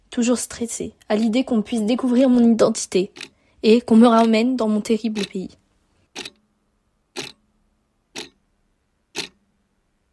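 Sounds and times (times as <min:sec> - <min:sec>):
speech: 0:00.2 - 0:05.6
large central clock ticking in a big hall: 0:03.1 - 0:03.4, 0:04.0 - 0:06.4, 0:07.1 - 0:07.4, 0:08.1 - 0:08.4, 0:09.1 - 0:09.4.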